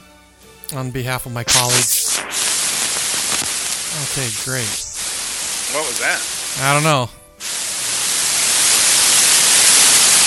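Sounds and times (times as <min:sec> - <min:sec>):
speech: 0:00.7 - 0:02.0, 0:04.0 - 0:04.8, 0:05.7 - 0:07.2
microphone static from faulty XLR cable: 0:01.3 - 0:10.2.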